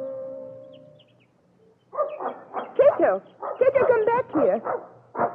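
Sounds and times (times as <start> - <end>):
dog yipping and whimpering barks: 1.9 - 5.3.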